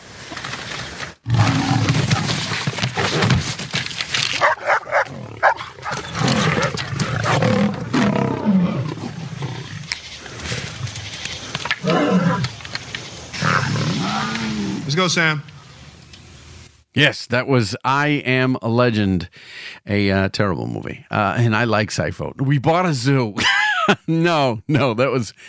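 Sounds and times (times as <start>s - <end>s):
lions roaring while taking a hunted deer: 1.2s - 3.2s, 4.4s - 11.0s, 11.6s - 12.6s, 13.3s - 15.1s
lions' deep growling snarls: 1.2s - 3.2s, 4.4s - 10.9s, 11.8s - 12.5s, 13.3s - 15.0s
speech: 15.0s - 15.5s, 17.0s - 25.4s.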